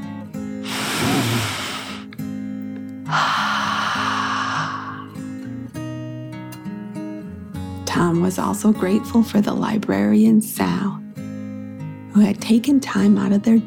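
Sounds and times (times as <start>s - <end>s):
deep breath drawn in and let out: 0.6s - 2.1s, 3.1s - 5.4s
soft sustained music: 5.2s - 13.6s
speech: 8.0s - 11.0s, 12.2s - 13.6s.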